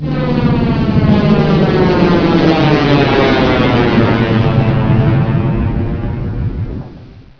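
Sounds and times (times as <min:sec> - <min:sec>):
alien flyer flying by: 0:00.0 - 0:07.3.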